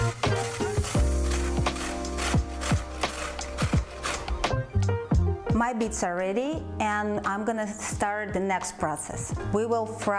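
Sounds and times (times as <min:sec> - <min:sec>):
beets being shredded on a grater by a gloved cook: 0:00.0 - 0:04.5
soft music: 0:00.0 - 0:10.1
speech: 0:05.7 - 0:10.1.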